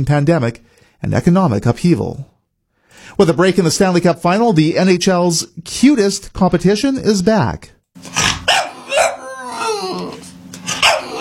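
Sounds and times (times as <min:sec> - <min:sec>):
speech: 0:00.0 - 0:02.3, 0:03.0 - 0:08.3
dog whining and growling: 0:08.0 - 0:11.1
dog barking: 0:08.2 - 0:09.8, 0:10.7 - 0:11.1.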